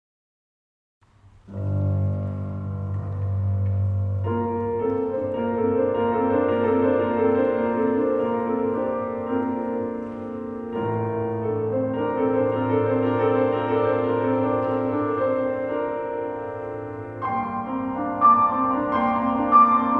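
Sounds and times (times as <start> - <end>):
live piano prelude: 1.0 - 19.9.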